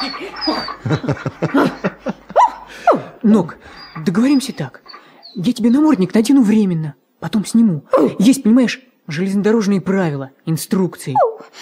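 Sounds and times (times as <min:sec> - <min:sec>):
dog yipping and whining: 0:00.0 - 0:01.0, 0:02.4 - 0:03.0, 0:03.7 - 0:05.4, 0:11.2 - 0:11.5
speech: 0:00.0 - 0:01.6, 0:03.2 - 0:04.8, 0:05.4 - 0:11.6
laughter: 0:00.0 - 0:02.8.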